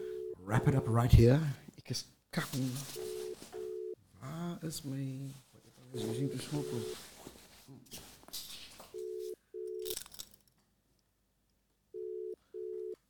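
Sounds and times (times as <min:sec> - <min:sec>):
outgoing phone call ringing tone: 0:00.0 - 0:01.2, 0:02.8 - 0:04.0, 0:06.0 - 0:07.0, 0:09.0 - 0:09.9, 0:12.0 - 0:13.0
speech: 0:00.5 - 0:03.1, 0:04.2 - 0:07.1
rustling: 0:02.4 - 0:03.9, 0:04.8 - 0:09.4.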